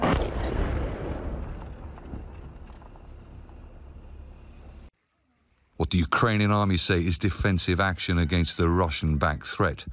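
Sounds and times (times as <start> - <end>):
hidden Ukrainian artillery firing shells in eastern Ukraine: 0.0 - 3.2
speech: 5.8 - 9.9.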